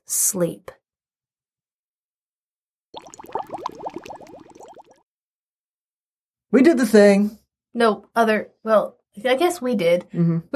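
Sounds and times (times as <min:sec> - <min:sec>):
speech: 0:00.1 - 0:00.8, 0:06.5 - 0:10.5
boiling water bubbling: 0:03.0 - 0:05.0.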